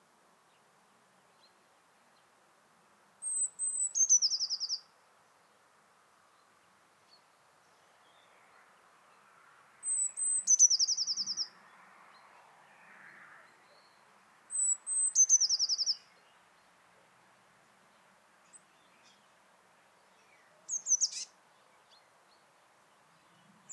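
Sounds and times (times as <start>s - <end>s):
faint background noise: 0.0s - 23.7s
Eurasian blue tit Cyanistes caeruleus singing: 3.2s - 4.8s, 9.9s - 11.5s, 14.5s - 16.0s, 20.3s - 22.1s.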